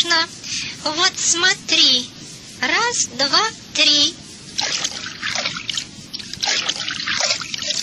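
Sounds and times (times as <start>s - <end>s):
speech: 0.0s - 4.9s
bubbly trickles underwater: 4.6s - 7.8s
watery gurgling and splashing of a bird diving and paddling underwater: 4.6s - 7.8s.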